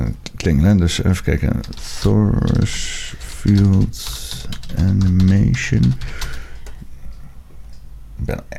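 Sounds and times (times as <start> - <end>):
speech: 0.4 - 6.3, 8.2 - 8.5
typing on a computer keyboard: 1.6 - 6.8.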